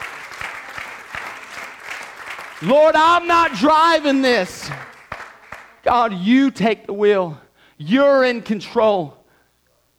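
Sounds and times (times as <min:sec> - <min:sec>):
church congregation clapping hands in rhythm: 0:00.0 - 0:06.1
speech: 0:02.6 - 0:04.9, 0:05.9 - 0:09.2.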